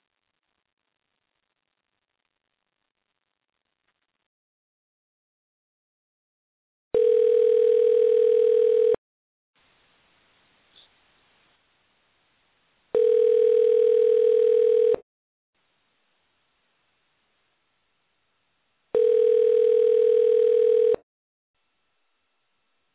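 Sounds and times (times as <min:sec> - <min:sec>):
unanswered telephone call ringback tones: 0:07.0 - 0:09.0, 0:13.0 - 0:15.0, 0:19.0 - 0:21.0.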